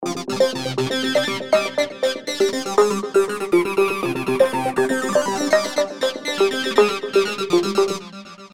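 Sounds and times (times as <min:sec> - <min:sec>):
trance music sample: 0:00.0 - 0:08.5.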